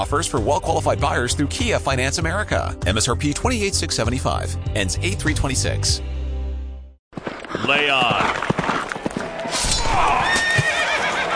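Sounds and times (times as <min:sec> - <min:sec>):
speech: 0:00.0 - 0:06.2, 0:07.7 - 0:08.5
horse hoof clops: 0:07.1 - 0:11.3
horse whinnying at a Renaissance festival: 0:09.8 - 0:11.3.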